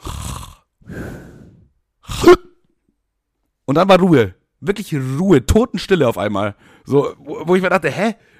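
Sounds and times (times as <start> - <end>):
voice imitating a man snoring with raspy breaths and hiccup-like gasp: 0.0 - 2.5
speech: 2.2 - 2.5, 3.7 - 8.3.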